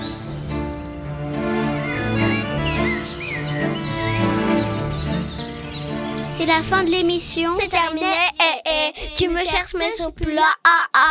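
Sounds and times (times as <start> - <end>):
birds chirping and whistling: 0.0 - 7.9
speech: 6.4 - 8.3, 9.2 - 11.0.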